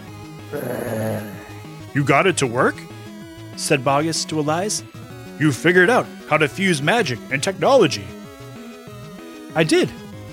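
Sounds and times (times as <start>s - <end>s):
robot wolf growling: 0.5s - 1.6s
speech: 0.5s - 2.9s, 3.6s - 8.2s, 9.6s - 10.0s.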